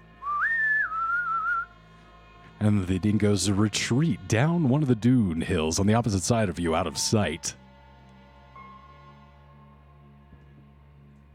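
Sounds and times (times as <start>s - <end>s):
person whistling: 0.2s - 1.7s
speech: 2.6s - 7.6s.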